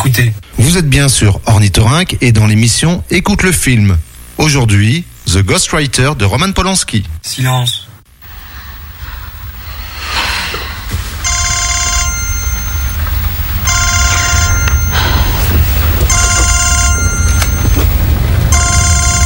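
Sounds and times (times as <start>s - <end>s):
speech: 0.0s - 7.9s
steady noisy background: 0.0s - 19.2s
telephone ringing with a bright electronic trill: 11.1s - 19.2s.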